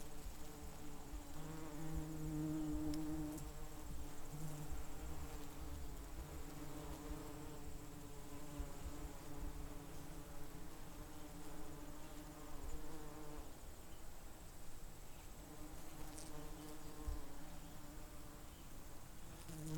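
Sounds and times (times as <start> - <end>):
bee buzzing: 0.2 - 13.5, 15.4 - 18.6, 19.2 - 19.7.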